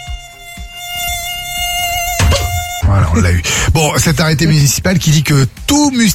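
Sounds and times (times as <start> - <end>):
tiger mosquito whining in flight: 0.0 - 3.2
speech: 3.2 - 6.1.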